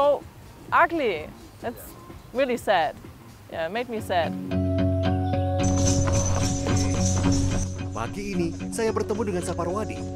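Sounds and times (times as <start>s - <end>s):
speech: 0.0s - 4.6s, 8.0s - 10.1s
continuous musical tone: 0.2s - 10.1s
horse hooves clip-clopping pulling a garbage cart on Gili Trawangan: 5.6s - 9.2s.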